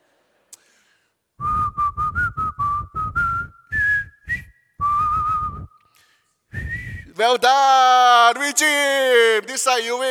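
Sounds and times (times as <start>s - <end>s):
person whistling a Christmas song melody: 1.4s - 5.9s, 6.5s - 7.2s
speech: 7.2s - 10.0s.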